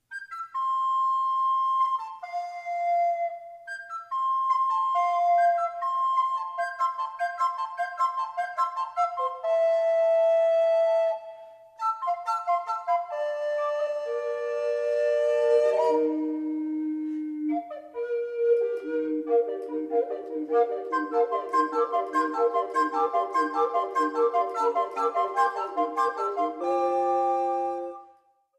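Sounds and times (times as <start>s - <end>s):
recorder playing a fantasy: 0.0s - 28.2s.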